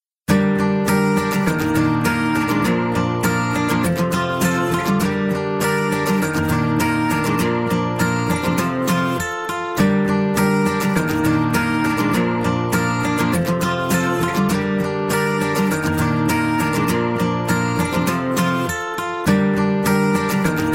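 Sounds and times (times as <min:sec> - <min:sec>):
acoustic guitar ringtone: 0:00.3 - 0:20.7.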